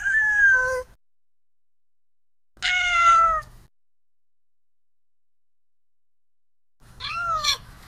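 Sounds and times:
cat meowing: 0:00.0 - 0:00.9, 0:02.6 - 0:03.5, 0:07.0 - 0:07.7.

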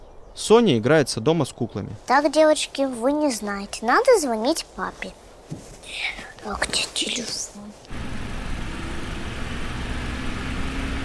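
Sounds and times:
speech: 0:00.4 - 0:07.6
truck engine running while the truck is driving: 0:07.9 - 0:11.0.

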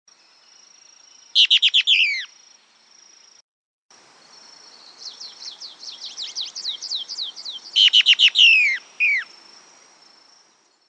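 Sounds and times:
plain-crested elaenia Elaenia cristata cristata calling: 0:01.4 - 0:02.3, 0:04.9 - 0:09.4.

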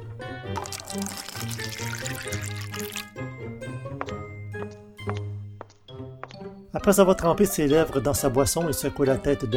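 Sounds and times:
coffee maker in a kitchenette brewing and pouring coffee: 0:00.5 - 0:03.2
speech: 0:06.9 - 0:09.5.

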